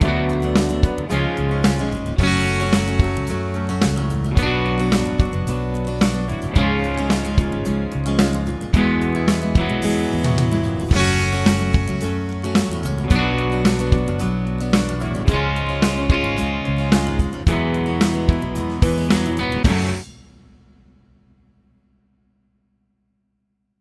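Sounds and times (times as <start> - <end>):
F sharp minor key chord triples: 0.0 - 20.0.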